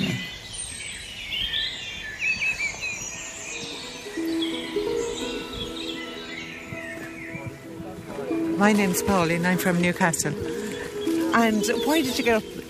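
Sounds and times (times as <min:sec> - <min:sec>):
busy outdoor chorus of birdsong: 0:00.0 - 0:12.6
pheasant calling: 0:00.0 - 0:12.6
dunnock's high quick warbling calls: 0:03.3 - 0:12.6
speech: 0:08.6 - 0:10.6, 0:11.4 - 0:12.6.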